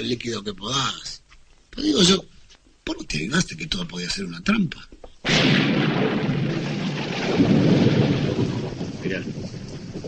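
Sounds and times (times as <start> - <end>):
speech: 0.0 - 1.2, 1.8 - 2.3, 2.9 - 6.3, 7.3 - 9.6
dense steady roar of heavy rain: 5.3 - 10.0
sudden loud thunder crack: 5.3 - 10.0.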